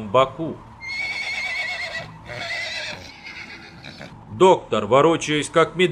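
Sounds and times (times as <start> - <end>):
speech: 0.1 - 0.7, 4.0 - 5.9
small horses neighing restlessly: 0.8 - 4.2.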